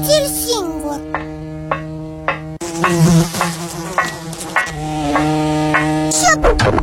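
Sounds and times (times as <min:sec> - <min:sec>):
fly buzzing: 0:00.0 - 0:06.6.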